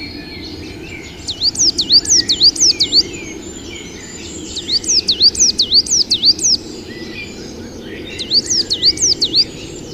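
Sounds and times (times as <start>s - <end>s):
steady background noise: 0.0s - 9.9s
coal tit singing quick high two-part notes: 0.9s - 6.6s, 8.1s - 9.9s
speech: 1.9s - 6.9s.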